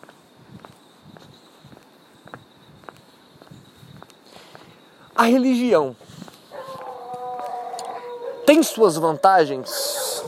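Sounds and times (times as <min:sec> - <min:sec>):
speech: 0:05.2 - 0:06.0, 0:08.5 - 0:10.0
dogs yipping: 0:06.5 - 0:10.2.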